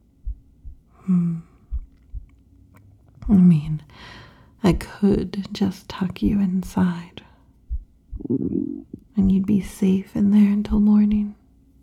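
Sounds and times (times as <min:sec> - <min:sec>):
low hum or sighing tone: 0:00.0 - 0:04.0, 0:04.7 - 0:09.8
deep heartbeat thumps: 0:00.2 - 0:01.0, 0:01.6 - 0:02.4, 0:04.7 - 0:05.4, 0:06.1 - 0:06.8, 0:07.6 - 0:09.5
speech: 0:03.3 - 0:07.3, 0:08.2 - 0:11.4.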